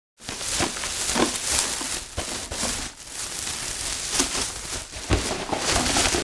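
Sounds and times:
garbage bag rustling while being handled: 0.2 - 6.2.

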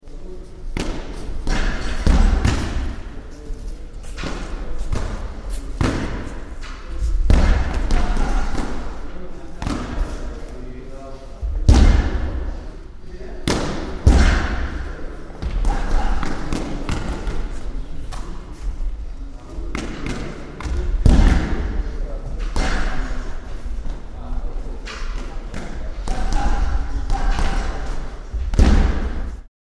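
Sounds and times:
boxing gym ambience with boxers and kick boxers: 0.0 - 29.5.

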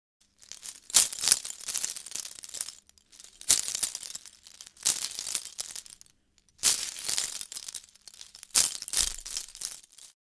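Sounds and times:
seashell necklace jewelry movement: 0.3 - 10.2.

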